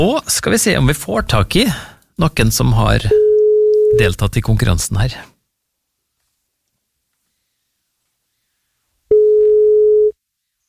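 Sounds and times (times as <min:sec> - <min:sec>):
speech: 0:00.0 - 0:03.2, 0:03.9 - 0:05.3
telephone ringback tone on outgoing call: 0:03.2 - 0:04.0, 0:09.1 - 0:10.2.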